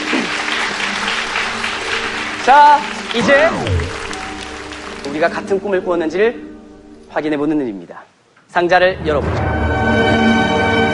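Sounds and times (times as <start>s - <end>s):
audience applause: 0.0s - 5.6s
speech: 2.4s - 3.8s, 5.0s - 6.5s, 7.1s - 10.3s.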